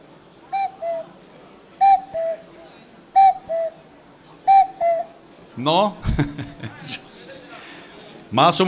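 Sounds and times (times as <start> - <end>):
person whistling or hooting a falling two-note cuckoo call: 0.5 - 1.1, 1.8 - 2.4, 3.2 - 3.8, 4.5 - 5.2
speech: 5.6 - 7.1, 8.3 - 8.6
laughter: 6.0 - 8.0.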